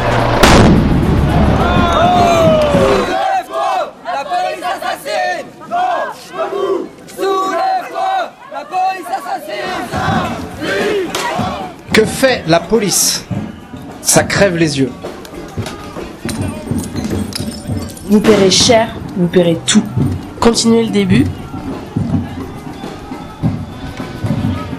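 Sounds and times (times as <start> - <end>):
heavy booming blasts and bangs: 0.0 - 3.0
large riot crowd shouting and chanting in Nantes: 0.0 - 24.7
speech: 12.5 - 13.3, 14.1 - 15.0, 18.1 - 21.4.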